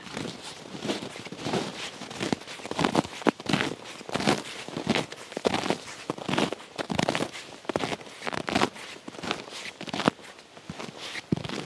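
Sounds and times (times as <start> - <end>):
footsteps crunching through icy snow and soft snow: 0.0 - 11.6.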